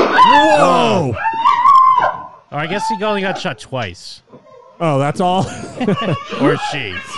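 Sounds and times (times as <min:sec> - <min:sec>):
man screaming in fear: 0:00.2 - 0:01.6
speech: 0:02.6 - 0:04.2, 0:04.8 - 0:07.1
laughter: 0:04.9 - 0:07.1.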